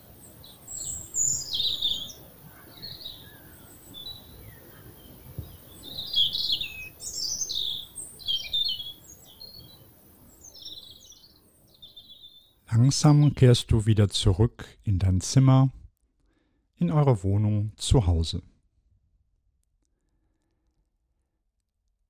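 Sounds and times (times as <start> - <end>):
several birds chirping and singing among fields and meadows: 0.1 - 13.6
speech: 12.9 - 15.8, 16.8 - 18.5.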